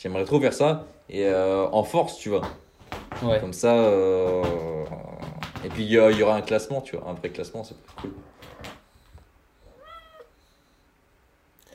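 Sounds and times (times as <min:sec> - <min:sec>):
speech: 0:00.0 - 0:02.6, 0:03.2 - 0:08.8
soft knocks: 0:02.3 - 0:06.6
female cat meowing after waking from a nap: 0:09.6 - 0:10.4.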